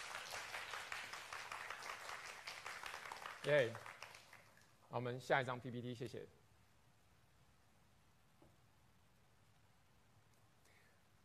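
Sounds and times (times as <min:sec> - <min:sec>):
crowd clapping in applause: 0:00.0 - 0:04.6
speech: 0:03.4 - 0:03.9, 0:04.9 - 0:06.4.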